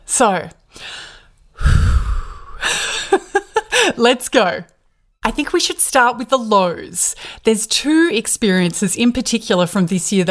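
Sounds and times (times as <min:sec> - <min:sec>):
speech: 0:00.2 - 0:00.8, 0:03.9 - 0:10.2
deep breath drawn in loudly: 0:00.8 - 0:02.8.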